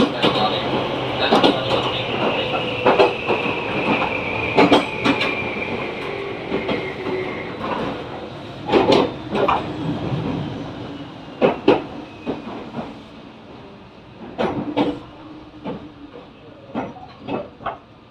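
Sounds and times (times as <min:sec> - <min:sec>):
sharp clacks from train wheels: 0:00.0 - 0:10.4, 0:14.2 - 0:17.9
train running heard from on board: 0:00.0 - 0:18.0.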